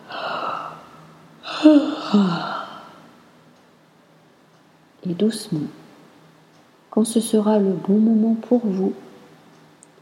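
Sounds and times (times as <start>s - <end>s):
long breathy yawn with groaning stretch: 1.4s - 3.0s
speech: 1.6s - 2.5s, 5.1s - 5.8s, 6.9s - 9.0s.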